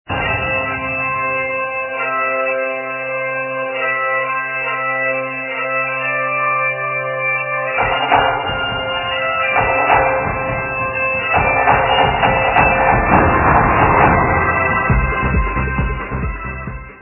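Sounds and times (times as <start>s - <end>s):
Irish bagpipes: 0.1s - 17.0s.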